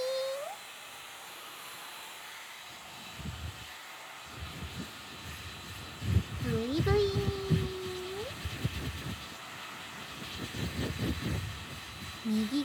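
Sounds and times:
hair dryer blowing: 0.0s - 12.6s
speech: 12.3s - 12.6s.

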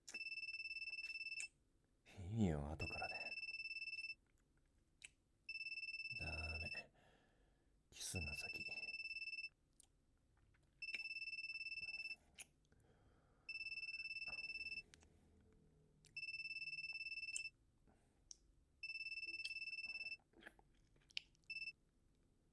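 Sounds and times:
phone ringing with an electronic tone: 0.2s - 1.4s, 2.8s - 4.2s, 5.5s - 6.8s, 8.2s - 9.5s, 10.8s - 12.2s, 13.5s - 14.9s, 16.2s - 17.5s, 18.8s - 20.2s, 21.5s - 21.8s
speech: 2.3s - 3.2s.

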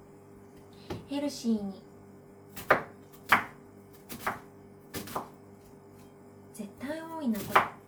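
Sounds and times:
speech: 1.1s - 1.9s
knife chopping onions: 2.5s - 5.4s, 6.8s - 7.8s.

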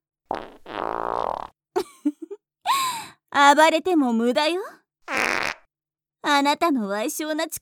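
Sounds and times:
loud buzzing fart: 0.3s - 1.6s, 5.1s - 5.7s
speech: 3.4s - 5.2s, 6.3s - 7.6s.

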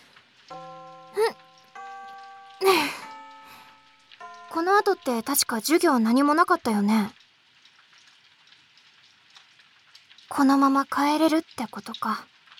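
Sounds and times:
light rain falling: 0.0s - 12.5s
school bell chime in two sustained notes: 0.5s - 5.8s
speech: 4.6s - 7.2s, 10.4s - 12.3s.

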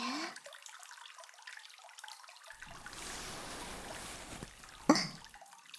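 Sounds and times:
ear cleaning after a bath recorded with a binaural microphone: 2.7s - 5.0s.

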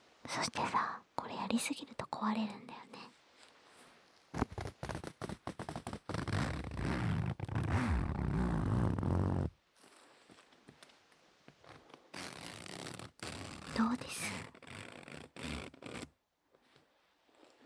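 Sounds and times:
speech: 0.3s - 3.0s
zipper being opened and closed: 4.3s - 10.4s, 11.6s - 16.2s, 17.2s - 17.6s.

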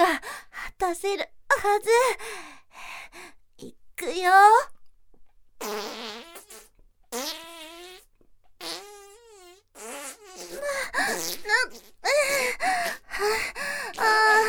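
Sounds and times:
speech: 0.8s - 2.4s, 3.6s - 4.7s, 5.6s - 6.3s, 7.1s - 7.5s, 10.9s - 14.4s
watery fart: 5.6s - 12.1s.

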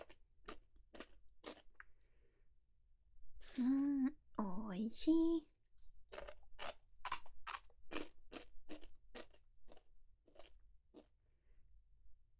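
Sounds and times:
crunching of Japanese rice crackers being bitten and chewed: 0.0s - 1.7s, 6.2s - 11.1s
speech: 4.7s - 5.5s.

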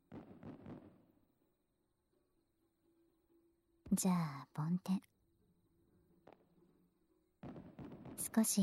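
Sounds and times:
booms of fireworks bursting: 0.0s - 1.2s, 7.4s - 8.6s
speech: 4.0s - 5.1s, 8.3s - 8.6s.

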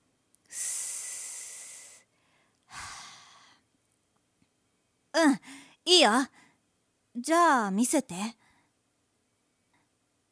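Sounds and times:
deep breathing: 0.5s - 3.6s
speech: 5.2s - 6.4s, 7.2s - 8.4s.

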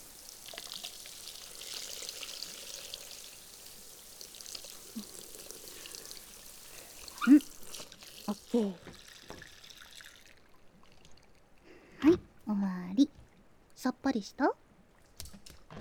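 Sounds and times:
water pouring to rinse soap foam off a body: 0.0s - 11.4s
speech: 8.6s - 8.9s, 13.8s - 14.6s.

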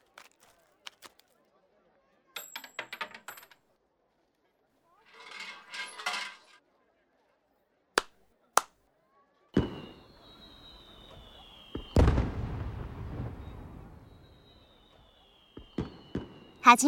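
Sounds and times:
thin firework whistle: 9.6s - 12.3s, 13.3s - 16.8s
booming firework explosions: 9.6s - 14.7s, 15.6s - 16.6s
firework pops: 11.2s - 13.1s, 15.6s - 16.5s
speech: 16.6s - 16.8s.

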